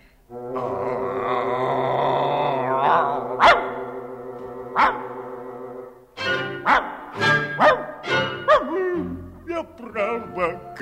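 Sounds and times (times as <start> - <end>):
sustained droning tone: 0.2 - 6.2
dog barking: 3.4 - 3.8, 4.8 - 5.1, 6.6 - 8.7.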